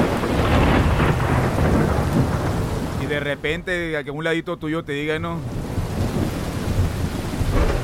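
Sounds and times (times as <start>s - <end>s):
deep continuous rumble of thunder: 0.0s - 7.8s
steady heavy rain: 0.0s - 7.8s
speech: 3.2s - 5.6s.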